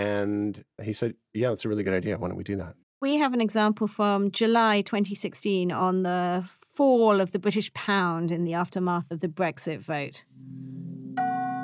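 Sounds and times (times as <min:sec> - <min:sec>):
speech: 0:00.0 - 0:10.9
synthesized data sonification chime: 0:10.3 - 0:11.6.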